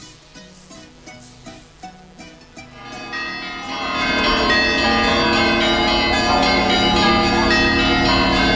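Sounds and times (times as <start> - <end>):
church bells ringing: 2.8 - 8.5.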